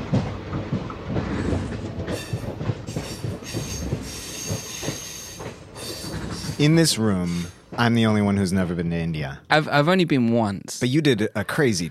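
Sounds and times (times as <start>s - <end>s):
Indian Railway passenger train wheels rumbling and clattering on rails: 0.0s - 9.0s
speech: 6.6s - 11.8s.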